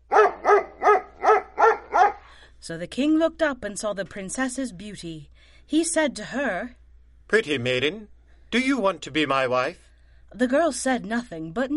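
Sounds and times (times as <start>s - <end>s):
dog barking: 0.0s - 2.3s
speech: 2.6s - 11.7s.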